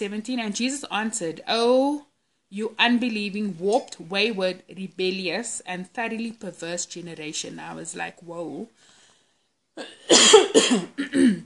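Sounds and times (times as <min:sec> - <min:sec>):
speech: 0:00.0 - 0:08.9, 0:09.8 - 0:11.4
harsh raspy coughing: 0:09.8 - 0:11.4.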